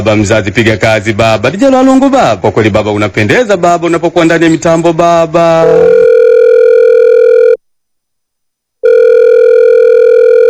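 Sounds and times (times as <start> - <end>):
speech: 0.0 - 6.0
telephone ringing: 5.6 - 7.6, 8.8 - 10.4.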